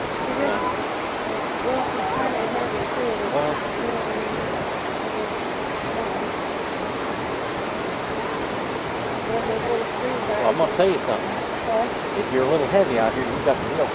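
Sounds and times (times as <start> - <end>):
ocean waves and surf at the beach: 0.0 - 13.9
faint indistinct voices murmuring: 0.1 - 6.4, 9.2 - 13.9
speech: 10.6 - 13.9.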